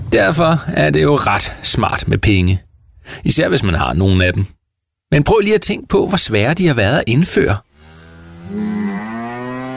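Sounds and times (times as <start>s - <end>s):
speech: 0.1s - 7.7s, 8.5s - 8.8s
cow mooing: 7.7s - 9.7s.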